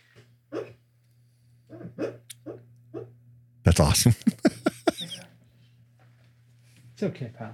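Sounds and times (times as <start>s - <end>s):
dreaming dog barking softly in its sleep: 0.5s - 0.8s, 1.7s - 3.1s
laughter: 3.7s - 5.2s
speech: 3.8s - 4.4s, 7.0s - 7.5s.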